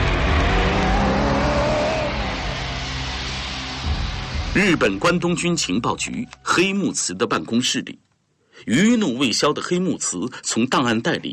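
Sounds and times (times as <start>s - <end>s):
car engine driving off: 0.0s - 5.2s
road noise: 0.0s - 6.5s
speech: 4.6s - 11.3s.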